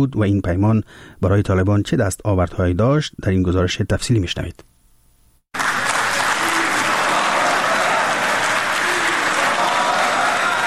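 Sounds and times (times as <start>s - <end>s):
speech: 0.0s - 4.7s
crowd applause in a hotel hall after a peace treaty signing: 5.6s - 10.6s.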